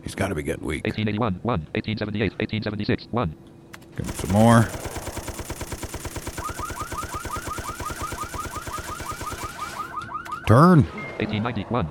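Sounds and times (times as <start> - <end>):
speech: 0.0 - 5.1, 10.5 - 11.8
machine gun firing in a video game: 4.0 - 9.9.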